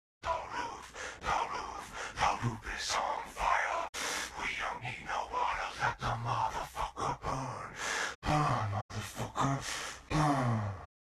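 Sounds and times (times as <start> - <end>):
intro vocals: 0.2 - 10.9.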